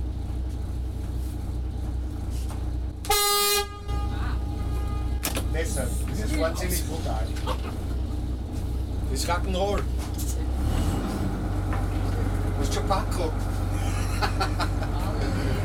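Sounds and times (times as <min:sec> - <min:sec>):
steady low engine rumble: 0:00.0 - 0:15.6
ship horn blast: 0:03.0 - 0:05.4
speech: 0:05.8 - 0:07.8, 0:09.1 - 0:10.8, 0:12.6 - 0:13.5, 0:14.3 - 0:15.5
laughter: 0:06.4 - 0:08.2, 0:13.7 - 0:15.6.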